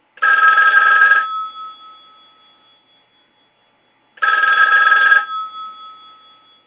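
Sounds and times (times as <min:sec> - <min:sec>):
old telephone: 0:00.2 - 0:02.7, 0:04.2 - 0:06.6.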